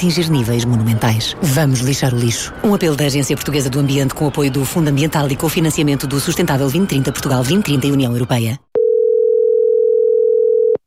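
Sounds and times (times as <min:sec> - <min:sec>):
speech: 0:00.0 - 0:08.7
telephone ringing tone on a call to a mobile phone: 0:08.8 - 0:10.8.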